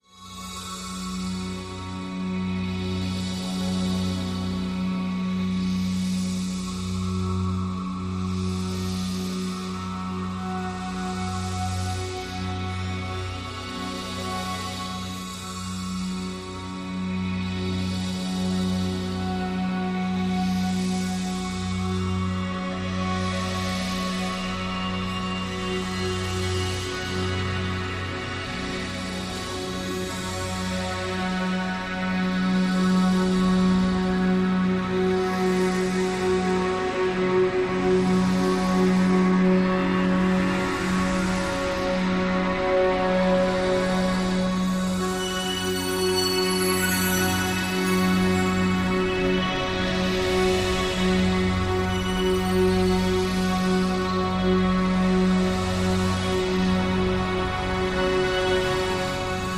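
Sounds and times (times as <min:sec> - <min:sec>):
drone: 0:00.0 - 0:59.5.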